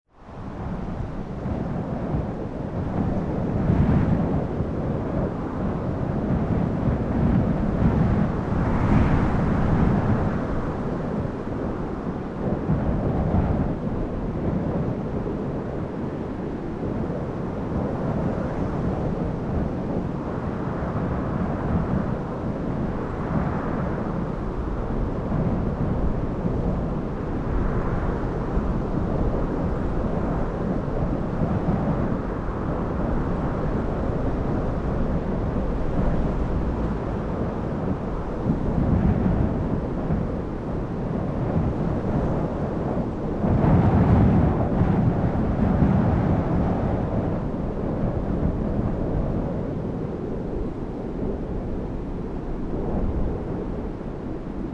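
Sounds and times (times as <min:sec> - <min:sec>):
ambient wind: 0:00.0 - 0:54.7.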